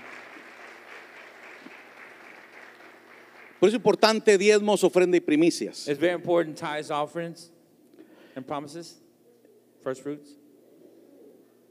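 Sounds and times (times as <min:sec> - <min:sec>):
church audience applauding on a Sunday: 0:00.0 - 0:04.2
speech: 0:03.6 - 0:07.6, 0:08.4 - 0:09.0, 0:09.8 - 0:10.4.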